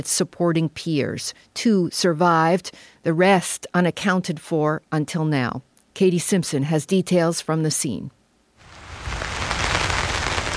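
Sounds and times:
speech: 0.0 - 8.2
heavy rain pouring down at the scene of a bridge collapse: 8.6 - 10.5.

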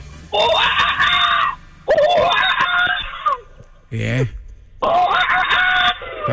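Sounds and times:
person imitating a monkey's call with shrill screeches: 0.3 - 3.5, 4.8 - 6.3
speech: 4.0 - 4.4.

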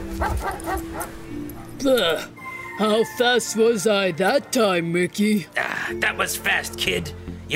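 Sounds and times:
boxer dog yipping at a dog park: 0.2 - 1.8
speech: 0.2 - 7.5.

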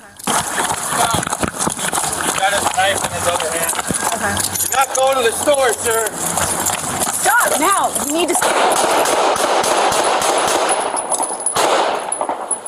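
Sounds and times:
noisy street background: 0.0 - 12.6
gunshots fired by a police officer: 0.2 - 3.9, 8.4 - 12.6.

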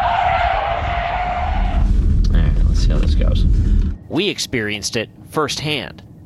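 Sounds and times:
electric car tires skidding under hard braking: 0.0 - 4.0
speech: 4.2 - 6.1.

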